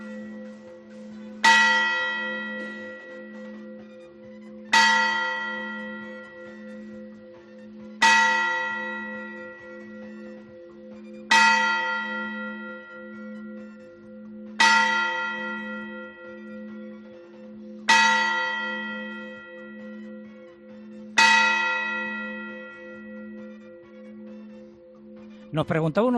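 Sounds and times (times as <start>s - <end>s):
church tower hour bell tolling: 0.0s - 3.9s, 4.5s - 25.2s
speech: 25.5s - 26.1s.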